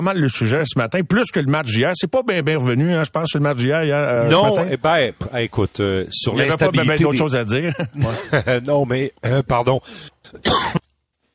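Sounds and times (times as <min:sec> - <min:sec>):
speech: 0:00.0 - 0:10.8
laughter: 0:07.6 - 0:08.7
person choking and coughing: 0:10.3 - 0:11.0.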